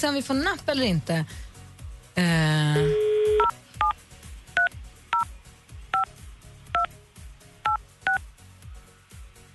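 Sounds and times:
speech: 0.0 - 1.5, 2.2 - 3.5
telephone dial tone: 2.8 - 3.5
touch-tone telephone dialing beeps: 2.8 - 4.0, 7.7 - 8.2.

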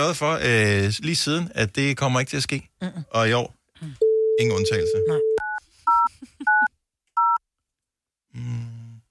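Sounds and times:
speech: 0.0 - 5.4, 8.4 - 8.7
phone touch-tone dialing beeps: 4.0 - 7.4
low grunt-like noise: 8.3 - 9.0.

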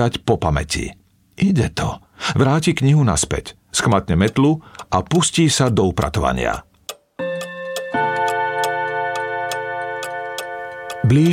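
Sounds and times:
speech: 0.0 - 6.7, 11.1 - 11.3
cuckoo clock ticking: 4.1 - 11.3.

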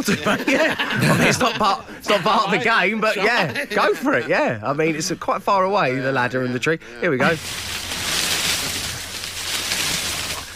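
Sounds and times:
laughter: 0.0 - 7.4
speech: 0.0 - 7.8
hissing wash of sea waves: 7.3 - 10.5.

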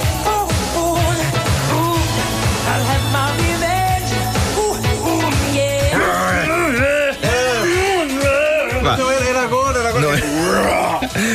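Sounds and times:
pop song with dense band backing: 0.0 - 11.3
male pop singer's throaty guttural growl: 4.4 - 9.0, 10.2 - 11.3.

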